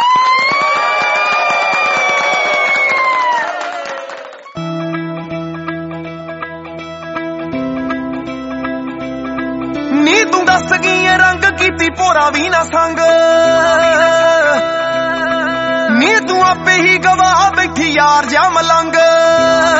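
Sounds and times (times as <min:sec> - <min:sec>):
crowd applauding: 0:00.0 - 0:04.6
scattered cheers: 0:00.0 - 0:04.6
steady music playing: 0:02.3 - 0:19.7
speech: 0:11.9 - 0:13.6.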